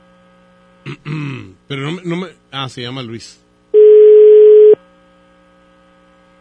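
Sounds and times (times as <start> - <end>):
speech: 0.9 - 3.4
telephone ringback tone on an unanswered call: 3.8 - 4.8.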